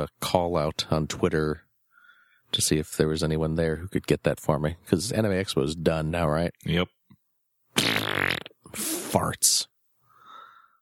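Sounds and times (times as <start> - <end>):
speech: 0.0 - 1.6, 2.5 - 7.0, 8.7 - 9.7
fart noises: 7.8 - 9.2.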